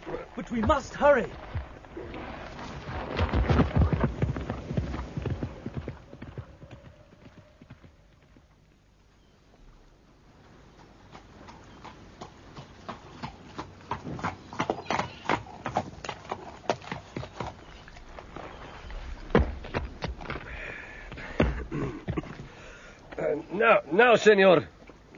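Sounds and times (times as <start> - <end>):
ridden horse hooves clip-clopping: 0.0 - 9.2, 9.9 - 23.4, 24.2 - 25.1
speech: 0.4 - 1.6, 24.0 - 24.7.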